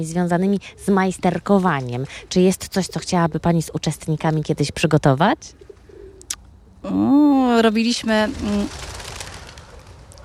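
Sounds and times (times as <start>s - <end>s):
speech: 0.0s - 5.7s, 6.8s - 8.9s
pigeons cooing: 0.0s - 10.2s.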